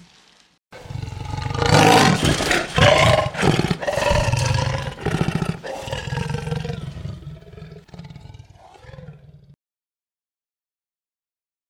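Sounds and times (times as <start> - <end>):
leopard growling: 0.8 - 9.6.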